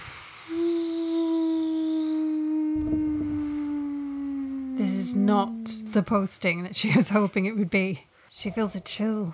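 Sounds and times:
long sustained howl: 0.5 - 6.2
speech: 5.2 - 9.3.

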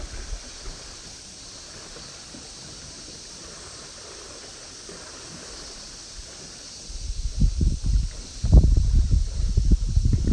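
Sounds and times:
wind gusts buffeting the microphone: 0.0 - 1.1, 6.2 - 10.3
seaside wind blowing: 0.0 - 2.2, 5.3 - 10.3.

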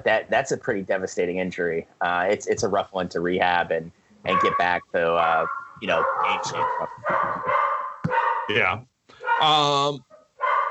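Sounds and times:
speech: 0.0 - 7.2, 8.5 - 10.1
dog barking excitedly in yelping bursts: 5.4 - 8.5, 10.4 - 10.7.

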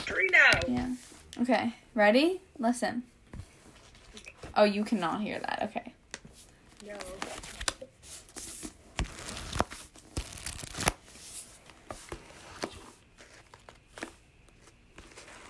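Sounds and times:
speech: 0.2 - 3.1, 4.6 - 5.9
pages of a book flipped through in quick succession: 3.3 - 4.5, 6.1 - 15.4.

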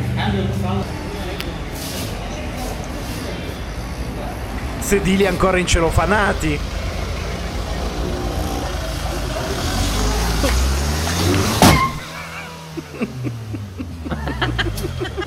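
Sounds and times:
Kia Carnival minivan engine idling: 0.0 - 15.2
people laughing and chattering: 0.1 - 15.2
speech: 0.2 - 1.4, 4.9 - 6.7, 13.0 - 13.4
brand-new Kia Carnival minivan engine starting and revving: 6.0 - 15.2.

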